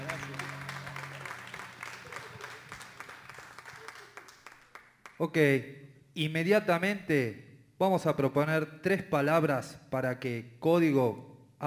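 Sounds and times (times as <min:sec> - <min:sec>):
audience applauding: 0:00.0 - 0:05.2
speech: 0:05.2 - 0:11.6.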